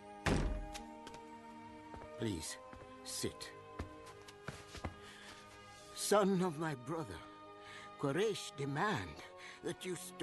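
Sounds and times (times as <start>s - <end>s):
door thudding shut: 0.2s - 0.8s
speech: 2.2s - 3.6s, 6.1s - 7.3s, 8.0s - 10.2s.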